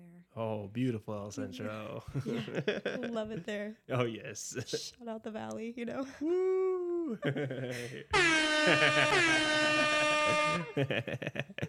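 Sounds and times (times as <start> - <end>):
speech: 0.4 - 11.6
people laughing: 2.0 - 3.5, 7.1 - 11.6
air horn blaring: 8.1 - 10.8.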